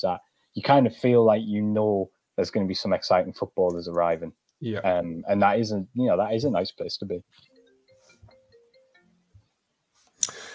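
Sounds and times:
speech: 0.0 - 7.5
phone ringtone melody of stepped electronic tones: 7.4 - 9.4.

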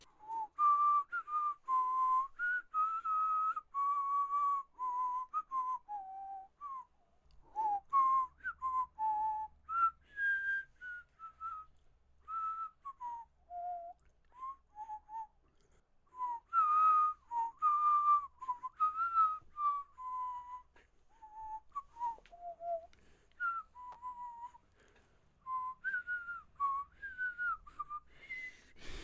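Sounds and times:
person whistling a tune as intermission music: 0.0 - 15.5, 16.1 - 29.0.

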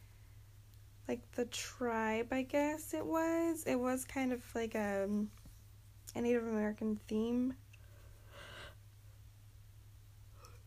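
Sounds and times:
low electrical hum: 0.0 - 10.6
speech: 1.1 - 5.4, 6.2 - 7.6
short breath: 7.9 - 8.8.

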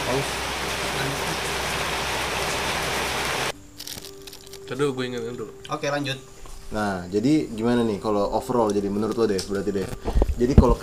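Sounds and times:
dense rain falling: 0.0 - 3.5
speech: 0.2 - 0.5, 4.7 - 10.8.

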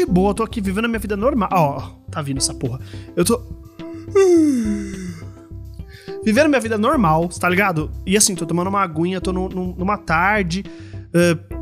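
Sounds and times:
speech: 0.0 - 5.3, 5.9 - 11.6
person yawning: 3.9 - 5.4.

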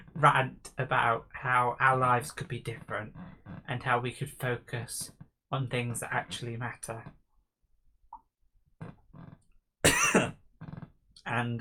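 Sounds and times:
speech: 0.2 - 7.2, 11.2 - 11.5
person coughing harshly: 9.9 - 10.4.

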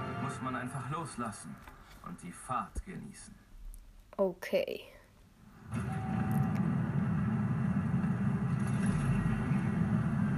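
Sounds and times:
speech: 0.3 - 3.4, 4.2 - 5.0, 5.6 - 6.0
steady low rumble: 6.3 - 10.3.

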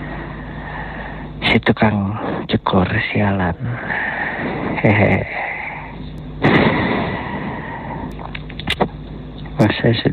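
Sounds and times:
steady low hum: 0.0 - 10.1
speech: 1.5 - 5.5, 9.6 - 10.1
sharp pops: 6.4 - 7.3
explosion: 6.4 - 7.6.

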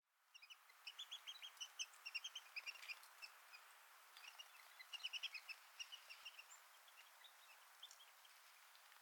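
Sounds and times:
pygmy nuthatch calls in ponderosa pine forest of western North America: 0.3 - 8.6.

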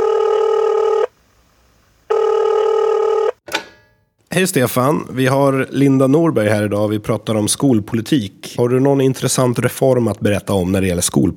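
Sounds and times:
telephone ringing tone on an outgoing call: 0.0 - 1.1, 2.1 - 3.4
speech: 4.4 - 11.3.

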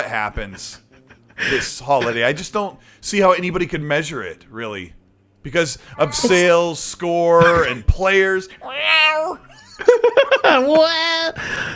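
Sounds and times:
speech: 0.0 - 0.8, 1.4 - 11.7
laughter: 0.4 - 2.4, 7.3 - 7.8, 9.5 - 11.7
cat meowing: 6.0 - 6.4.

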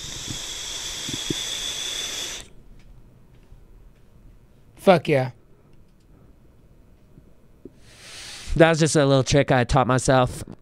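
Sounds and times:
vape smoke exhaled through one nostril: 0.0 - 2.5, 7.8 - 8.6
speech: 4.8 - 5.4, 8.6 - 10.6.

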